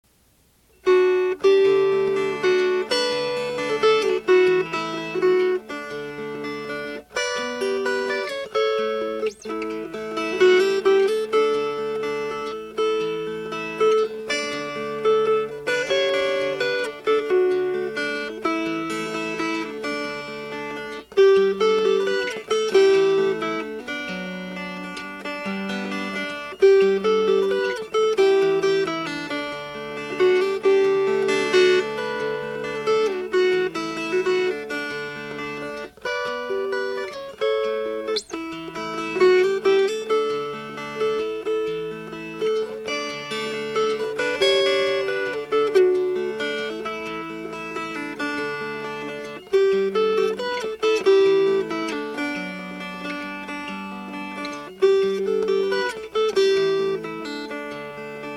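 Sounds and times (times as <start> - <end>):
fingerpicked guitar folk tune: 0.0 - 58.3.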